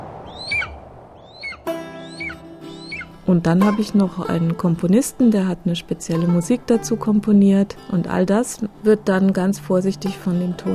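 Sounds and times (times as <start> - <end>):
strong steppe wind: 0.0 - 1.7
eagle calling: 0.3 - 4.6
speech: 3.3 - 10.7.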